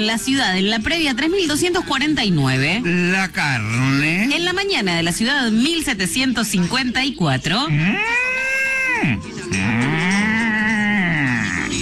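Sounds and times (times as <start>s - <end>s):
speech: 0.0s - 8.2s
cow mooing: 7.7s - 11.8s.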